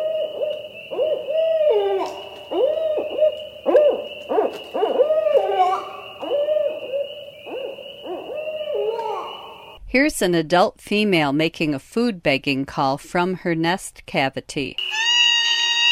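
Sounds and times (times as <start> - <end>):
female barred owl hoots: 0.0 - 9.8
speech: 10.0 - 15.0.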